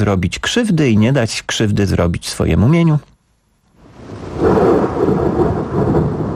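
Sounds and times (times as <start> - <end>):
speech: 0.0 - 3.1
loud thunder rumbling during a summer storm: 3.8 - 6.3.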